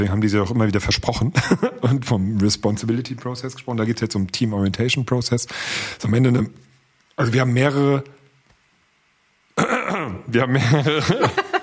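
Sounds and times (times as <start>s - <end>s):
speech: 0.0s - 6.6s, 7.2s - 8.2s, 10.3s - 11.4s
laughter: 1.4s - 2.1s, 10.6s - 11.6s
person clearing throat: 9.6s - 10.3s.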